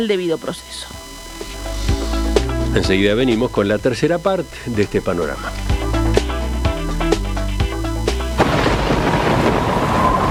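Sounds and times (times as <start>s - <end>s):
speech: 0.0s - 1.5s, 2.7s - 5.8s
short rhythmic musical passage: 0.0s - 9.1s
heavy rain: 8.4s - 10.3s
rumbling thunder: 8.4s - 10.3s.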